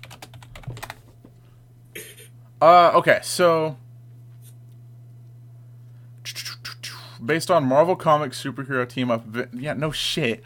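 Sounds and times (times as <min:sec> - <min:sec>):
typing on a computer keyboard: 0:00.0 - 0:01.1
steady low hum: 0:00.0 - 0:10.4
speech: 0:02.6 - 0:03.8, 0:07.2 - 0:10.4.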